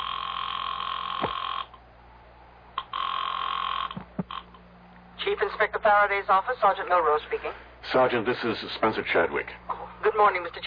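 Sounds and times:
telephone ringing: 0:00.0 - 0:01.8, 0:02.8 - 0:04.6
speech: 0:05.3 - 0:10.6.

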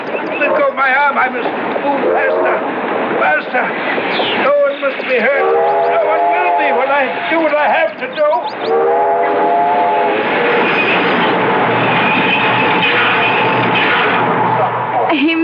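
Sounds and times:
freight train rumbling on rails: 0:00.0 - 0:15.4
speech: 0:00.6 - 0:09.6, 0:15.1 - 0:15.4
horn-like tones of a freight train: 0:05.3 - 0:07.9, 0:08.6 - 0:14.8.

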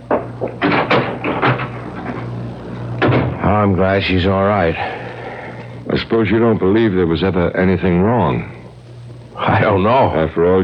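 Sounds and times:
low hum: 0:00.0 - 0:10.6
door opening and shutting: 0:00.1 - 0:02.4, 0:03.0 - 0:03.5
knocks and rattles: 0:00.1 - 0:02.4, 0:03.0 - 0:03.4
speech: 0:03.6 - 0:05.0, 0:05.9 - 0:08.6, 0:09.4 - 0:10.6.

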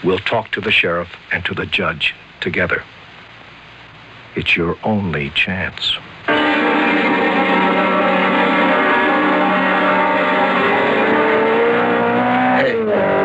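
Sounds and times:
speech: 0:00.0 - 0:03.0, 0:04.4 - 0:07.0
sports car engine roaring at high revs speeding past: 0:06.3 - 0:13.2.

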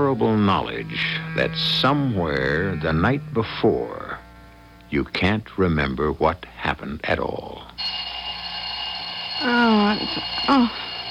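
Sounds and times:
shrill alarm clock ringing: 0:00.0 - 0:02.0, 0:07.8 - 0:11.1
speech: 0:00.0 - 0:04.1, 0:04.9 - 0:07.8, 0:09.4 - 0:10.8.

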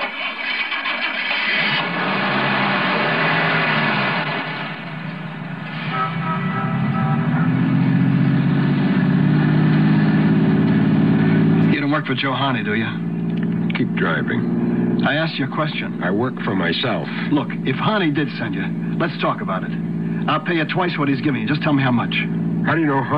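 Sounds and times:
car engine starting: 0:00.0 - 0:23.1
speech: 0:12.1 - 0:13.0, 0:13.8 - 0:23.1.

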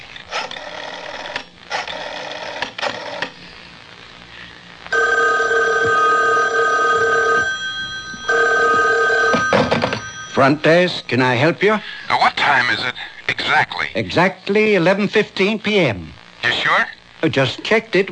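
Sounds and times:
telephone bell ringing: 0:04.9 - 0:10.6
speech: 0:10.4 - 0:18.1.

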